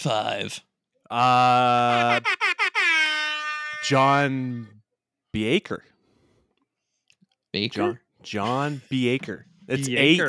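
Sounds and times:
speech: 0.0s - 2.4s, 3.8s - 5.9s, 7.5s - 10.2s
air horn blast: 1.8s - 4.2s.

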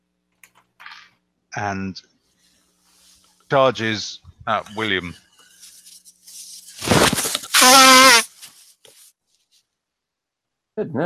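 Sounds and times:
speech: 1.6s - 2.2s, 3.5s - 5.3s, 10.8s - 11.0s
nose blowing with a honking hooting tone: 6.8s - 8.3s.

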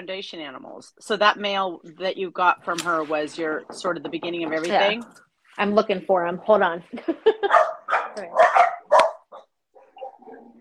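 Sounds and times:
speech: 0.0s - 8.8s
several cranky dogs barking in sharp bursts: 7.4s - 10.5s.

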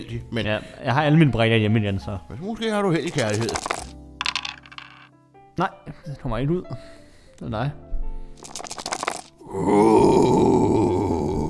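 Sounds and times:
speech: 0.0s - 3.8s, 5.6s - 7.8s, 9.5s - 10.4s
die rolled across a hard board during a board game: 3.1s - 5.1s.

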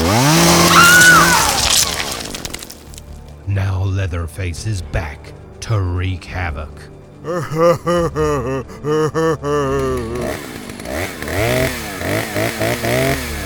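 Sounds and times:
chainsaw engine revving and sputtering out of fuel: 0.0s - 3.1s, 9.4s - 13.4s
speech: 4.0s - 10.6s, 11.4s - 13.3s
laughter: 7.2s - 10.5s.

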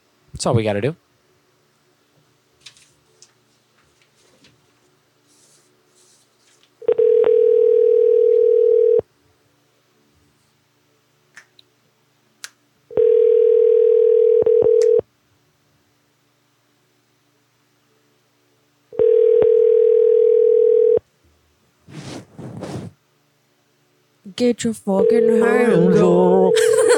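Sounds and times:
speech: 0.4s - 1.0s, 24.6s - 26.8s
telephone ringback tone while calling a moving company: 6.9s - 9.0s, 12.9s - 15.0s, 19.0s - 21.0s, 25.0s - 26.5s
laughter: 26.0s - 26.9s.

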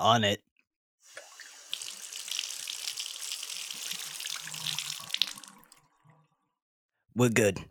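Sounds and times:
speech: 0.0s - 0.5s, 7.2s - 7.6s
cold tap water running into a sink: 1.1s - 6.4s.

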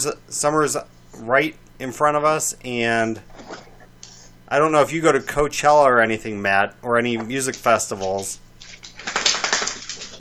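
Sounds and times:
speech: 0.0s - 3.7s, 4.5s - 8.4s
dog shaking its head: 7.6s - 10.1s.

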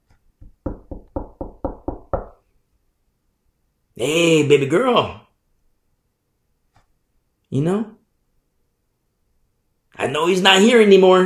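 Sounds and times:
knocking on a door: 0.4s - 2.4s
speech: 4.0s - 5.2s, 7.5s - 8.0s, 10.1s - 11.2s.

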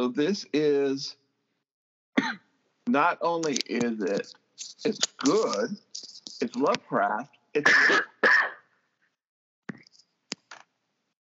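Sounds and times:
speech: 0.0s - 1.2s, 2.2s - 8.4s
cough: 2.2s - 2.5s, 7.6s - 8.7s.

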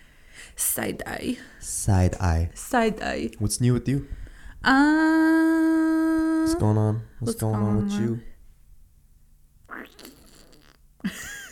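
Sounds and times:
speech: 0.6s - 8.3s
sputtering mouth noises resembling a fart: 9.6s - 11.0s.

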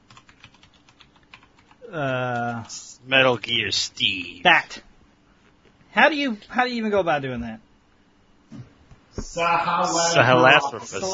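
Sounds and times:
quiet rapid typing on a computer keyboard: 0.0s - 2.7s
speech: 1.8s - 4.9s, 6.0s - 7.7s, 9.3s - 11.1s.

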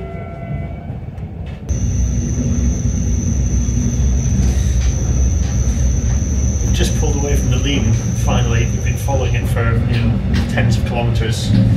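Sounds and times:
train moving along the railway with rattling wheels: 0.0s - 11.7s
sustained high-pitched squeal or whine: 1.7s - 9.4s
speech: 7.7s - 11.7s.

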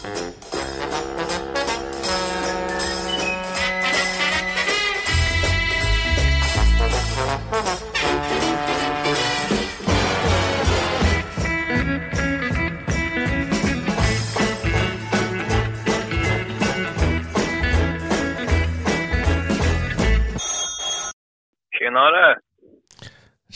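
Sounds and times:
loud music: 0.7s - 20.2s
brief voice over the phone line: 21.8s - 22.8s.

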